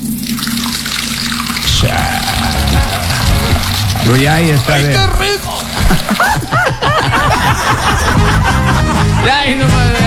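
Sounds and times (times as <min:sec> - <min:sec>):
water poured from a bucket on a hot day: 0:00.0 - 0:06.6
laughter: 0:01.8 - 0:10.0
speech: 0:04.1 - 0:10.0.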